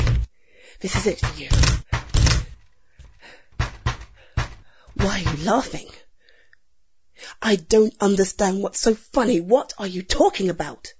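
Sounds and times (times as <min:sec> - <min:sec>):
heavy thuds against a blocked flimsy door being broken down: 0:00.0 - 0:00.3, 0:00.9 - 0:02.6, 0:03.6 - 0:05.6
speech: 0:00.8 - 0:01.8, 0:05.0 - 0:06.0, 0:07.4 - 0:10.9.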